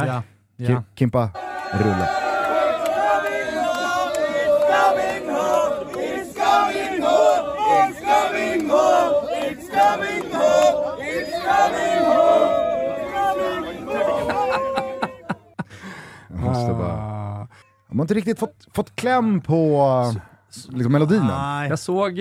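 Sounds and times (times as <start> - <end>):
speech: 0.0 - 2.2, 18.0 - 22.2
large crowd of marching football fans chanting a football song: 1.4 - 14.5
laughter: 13.1 - 16.9.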